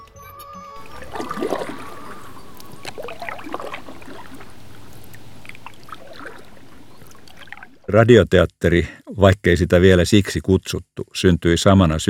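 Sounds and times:
water churning and splashing in the wake of a moving vessel: 0.8 - 7.9
low engine-like rumble: 0.8 - 8.0
speech: 7.9 - 12.0.

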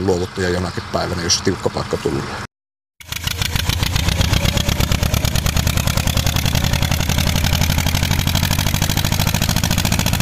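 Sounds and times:
speech: 0.0 - 2.5
tractor engine running with low rhythmic chugging: 3.0 - 10.2.

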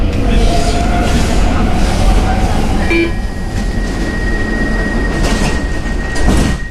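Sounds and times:
metro train rumbling along the track: 0.0 - 6.7
brief tonal squeal of metro train: 2.8 - 6.7.

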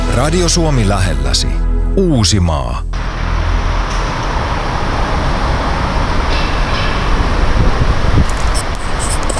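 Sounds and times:
speech: 0.1 - 2.9
low-frequency rumble of rail traffic beside a parking garage: 2.9 - 9.3.

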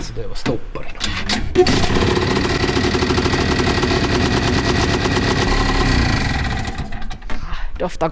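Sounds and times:
speech: 0.2 - 1.8, 7.8 - 8.1
small two-stroke moped engine sputtering and revving: 1.6 - 7.3.

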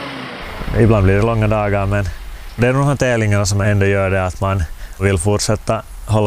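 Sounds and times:
tractor engine running: 0.4 - 5.0
speech: 0.8 - 6.2.

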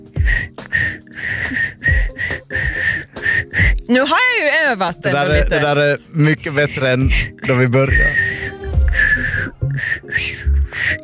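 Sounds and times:
person whistling with the mouth in short breathy bursts: 0.2 - 3.8, 7.2 - 11.0
speech: 3.9 - 8.2.

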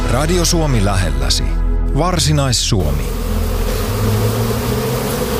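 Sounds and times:
speech: 0.2 - 3.3
honeybees buzzing at beehives in an apiary at a botanical garden: 2.8 - 5.3.

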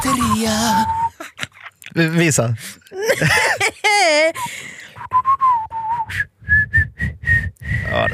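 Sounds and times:
person whistling a short tune: 0.0 - 1.2, 5.0 - 8.1
speech: 0.1 - 1.0, 2.0 - 4.8, 7.9 - 8.1
laughter: 2.9 - 4.7.

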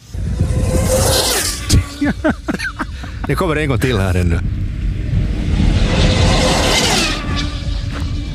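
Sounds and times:
British-built high-speed radio-controlled car whooshing past: 0.0 - 3.0, 4.7 - 8.3
steady outdoor noise: 0.0 - 8.3
speech: 2.0 - 2.5, 3.3 - 4.8
laughter: 2.0 - 3.5.

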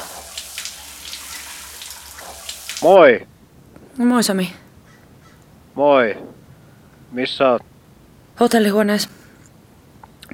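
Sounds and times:
water running from a hotel shower: 0.0 - 3.0
speech: 2.8 - 3.3, 4.0 - 4.6, 5.8 - 6.4, 7.1 - 7.7, 8.4 - 9.2.

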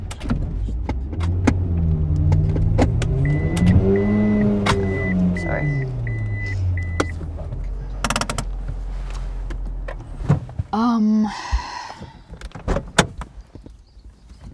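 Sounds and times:
car engine hum while driving around a corner and parking: 0.0 - 14.5
short high beeps: 3.2 - 7.2.

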